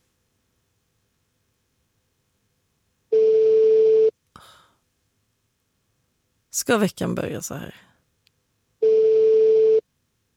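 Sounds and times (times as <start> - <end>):
telephone ringback tones on a phone line during unanswered call: 3.1 - 4.1, 8.8 - 9.8
speech: 6.6 - 7.9.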